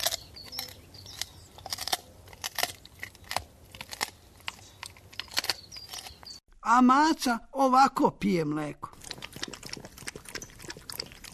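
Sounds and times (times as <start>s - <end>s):
dog crunching bones: 0.0s - 6.4s, 9.0s - 11.3s
speech: 6.7s - 8.9s.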